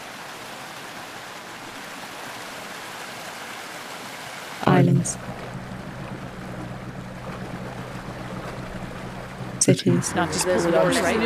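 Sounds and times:
flowing water rushing: 0.0s - 11.2s
speech: 4.7s - 5.5s, 9.7s - 11.2s.

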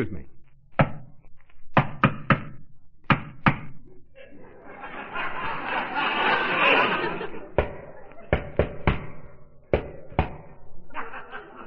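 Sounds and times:
speech: 0.0s - 0.3s
sharp knocks on a building's door: 1.8s - 3.7s, 7.6s - 10.6s
people laughing: 4.1s - 8.6s, 10.7s - 11.6s.

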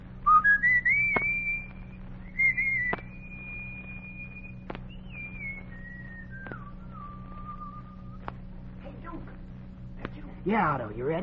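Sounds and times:
low steady hum: 0.0s - 11.2s
boy whistling a short tune to call his gang together: 0.2s - 8.2s
sharp clicks: 2.7s - 3.2s, 3.9s - 6.8s, 8.2s - 8.5s
speech: 10.5s - 11.2s.

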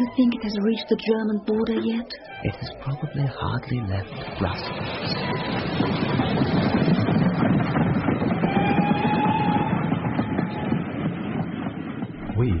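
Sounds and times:
speech: 0.0s - 6.6s, 12.4s - 12.5s
express train clattering along the rails: 4.1s - 12.5s.

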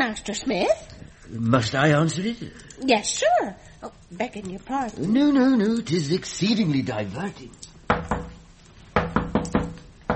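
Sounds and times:
speech: 0.0s - 7.7s
knocking on an onion cellar door: 7.9s - 8.4s, 9.0s - 10.1s.

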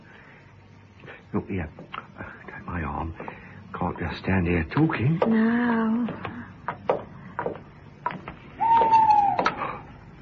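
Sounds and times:
speech: 1.3s - 2.0s, 2.7s - 6.4s
owl hooting at night: 8.5s - 9.8s.

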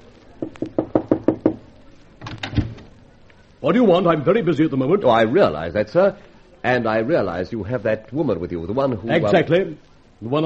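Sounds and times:
firm knocks on a wooden door: 0.4s - 1.6s
speech: 3.6s - 10.4s.

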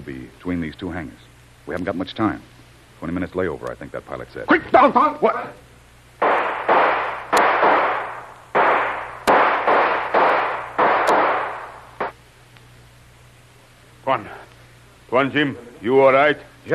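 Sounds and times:
speech: 0.0s - 5.7s, 14.1s - 14.4s, 15.1s - 16.7s
gunshots fired at people between airport hangars: 6.2s - 12.2s.

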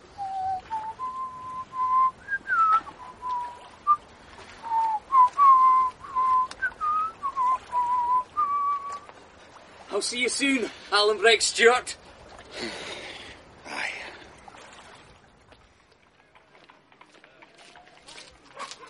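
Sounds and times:
person whistling a wavering tune: 0.1s - 4.0s, 4.6s - 9.1s
speech: 10.0s - 12.0s, 12.6s - 12.9s.

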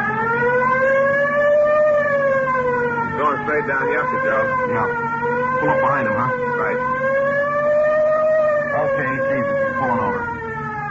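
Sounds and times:
police car siren wailing: 0.0s - 10.8s
speech: 3.6s - 7.0s.

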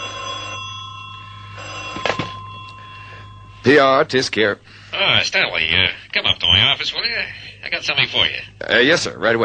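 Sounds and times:
desk telephone bell ringing: 0.0s - 4.0s
speech: 3.6s - 9.4s.

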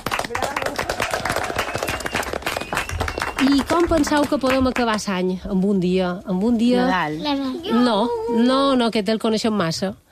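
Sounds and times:
small group applauding: 0.0s - 5.2s
speech: 3.5s - 10.1s.

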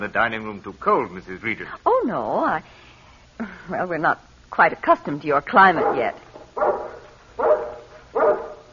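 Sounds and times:
speech: 0.0s - 7.5s
guard dog barking: 5.8s - 8.7s.

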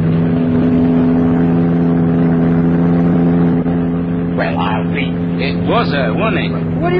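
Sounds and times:
car engine droning on a road: 0.0s - 6.9s
speech: 5.7s - 6.9s.

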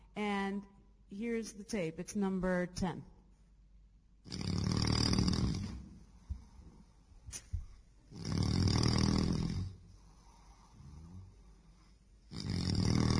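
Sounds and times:
speech: 0.2s - 3.2s, 4.2s - 4.4s
man snoring loudly: 4.2s - 5.8s, 8.1s - 11.6s, 12.3s - 13.1s.

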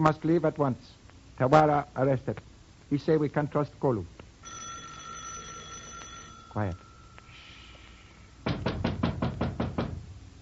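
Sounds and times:
speech: 0.0s - 4.6s, 6.6s - 6.8s
heavy knocking on a door by an impatient visitor: 8.4s - 10.1s.

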